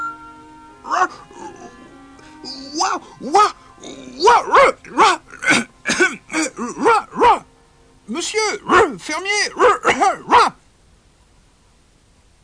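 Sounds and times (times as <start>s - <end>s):
person imitating dog barking yelps: 0.9s - 1.9s, 2.5s - 7.5s, 8.6s - 10.6s
speech: 2.8s - 5.2s, 8.2s - 10.6s.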